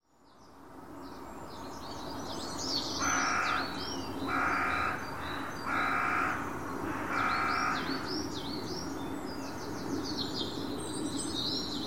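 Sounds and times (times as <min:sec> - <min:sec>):
birds chirping: 0:02.0 - 0:11.8
bird cawing: 0:03.0 - 0:08.1.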